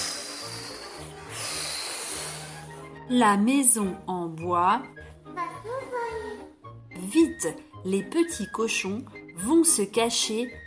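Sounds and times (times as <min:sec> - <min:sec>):
wolf blowing hard at a wooden house: 0:00.0 - 0:02.9
speech: 0:03.1 - 0:05.1, 0:07.1 - 0:10.6.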